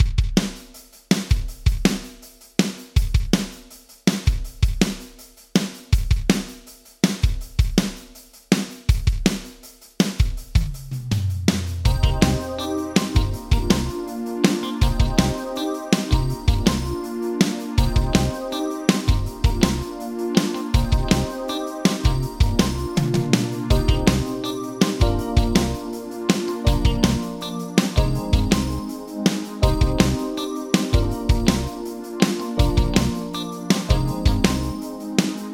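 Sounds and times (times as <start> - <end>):
Yamaha D5000 drums: 0.0 - 35.5.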